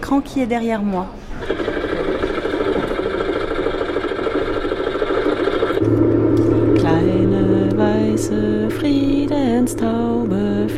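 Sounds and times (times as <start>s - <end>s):
speech: 0.1s - 1.7s, 8.2s - 10.7s
Trabant car two-stroke engine running with a buzzing rattle: 1.5s - 10.7s.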